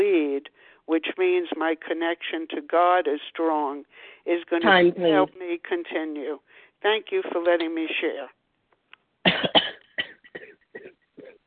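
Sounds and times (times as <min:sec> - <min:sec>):
speech: 0:01.0 - 0:08.4
person coughing harshly: 0:09.3 - 0:11.4.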